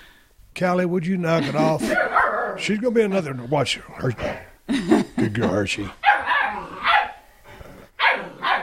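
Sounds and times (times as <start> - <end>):
speech: 0.6 - 6.0
laughter: 1.3 - 2.1, 4.7 - 5.9
puppies barking while playing with a cat toy: 1.7 - 3.4, 6.0 - 7.2, 7.9 - 8.6.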